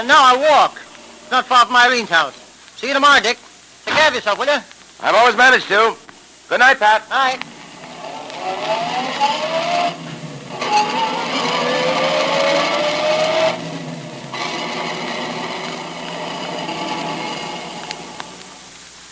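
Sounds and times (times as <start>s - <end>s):
speech: 0.0s - 7.5s, 10.7s - 11.5s
car engine revving and pulling away through gear shifts: 7.4s - 18.8s.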